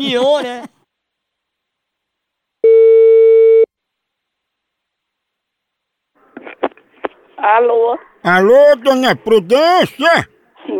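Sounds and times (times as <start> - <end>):
speech: 0.0 - 0.7, 7.4 - 10.3
telephone call tone on an outgoing call: 2.6 - 3.7.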